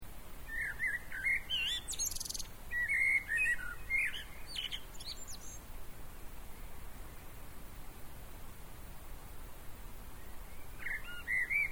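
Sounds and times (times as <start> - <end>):
steady background noise: 0.0 - 11.6
common blackbird Turdus merula singing warbled fluting phrases and squeaky twitters: 0.4 - 5.6, 10.2 - 11.6.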